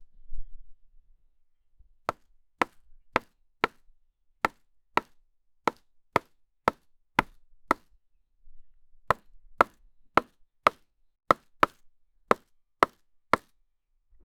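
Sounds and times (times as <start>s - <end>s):
crisp chopping: 2.6s - 3.8s, 5.7s - 7.8s, 9.1s - 13.5s.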